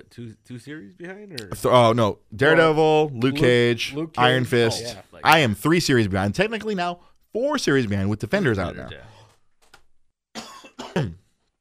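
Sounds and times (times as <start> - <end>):
speech: 0.1 - 9.2
person coughing: 10.4 - 11.2.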